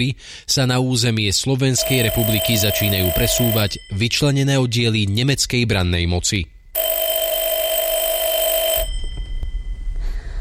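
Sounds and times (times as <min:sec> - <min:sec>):
speech: 0:00.0 - 0:07.0
telephone ringing with a high electronic bell tone: 0:01.8 - 0:04.2, 0:06.8 - 0:10.0.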